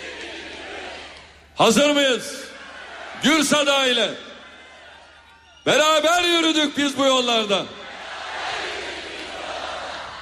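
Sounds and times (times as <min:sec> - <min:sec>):
large crowd at a political rally roaring and chanting: 0:00.0 - 0:01.8, 0:02.4 - 0:03.6, 0:07.6 - 0:10.2
speech: 0:01.6 - 0:02.5, 0:03.2 - 0:04.3, 0:05.6 - 0:07.8.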